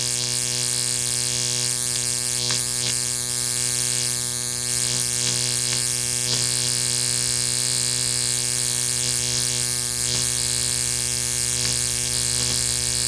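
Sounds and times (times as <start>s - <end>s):
electricity hum: 0.0s - 13.0s.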